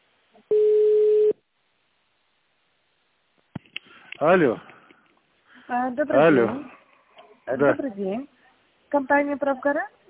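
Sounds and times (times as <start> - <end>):
telephone tone while a call is transferred: 0.5 - 1.4
speech: 4.2 - 4.7, 5.7 - 6.8, 7.5 - 8.3, 8.9 - 10.0.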